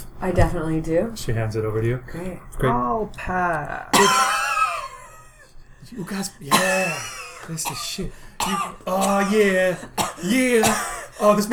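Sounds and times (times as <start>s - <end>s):
speech: 0.2s - 4.4s, 5.9s - 11.5s
raspy cough ending in a sharp hack: 3.9s - 5.5s, 6.4s - 11.5s.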